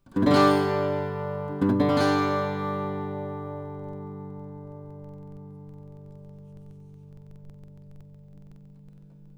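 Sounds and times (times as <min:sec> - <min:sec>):
1934 Gibson L-00 acoustic guitar: 0:00.0 - 0:09.3.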